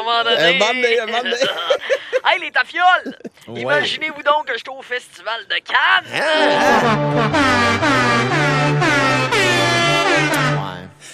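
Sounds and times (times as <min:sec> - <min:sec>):
speech: 0:00.1 - 0:08.5
loud buzzy kazoo-style horn playing a brisk melody: 0:06.2 - 0:11.0.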